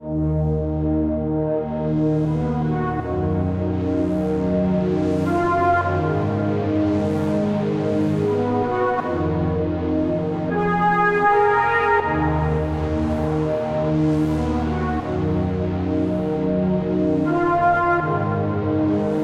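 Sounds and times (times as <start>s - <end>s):
synth pads in D sharp minor: 0.0s - 19.2s.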